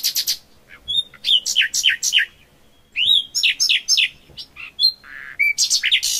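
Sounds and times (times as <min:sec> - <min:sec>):
common nightingale song: 0:00.0 - 0:06.1.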